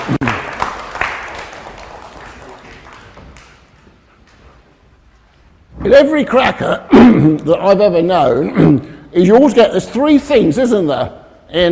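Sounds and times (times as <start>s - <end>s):
audience applause: 0.0s - 4.1s
speech: 5.9s - 11.7s.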